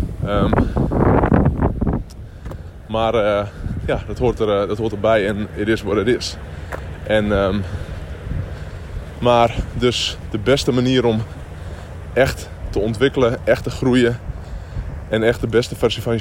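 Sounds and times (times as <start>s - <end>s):
gusty outdoor wind buffeting against the microphone: 0.0s - 16.1s
speech: 0.3s - 0.9s, 2.9s - 7.8s, 9.2s - 11.4s, 12.2s - 14.3s, 15.1s - 16.1s.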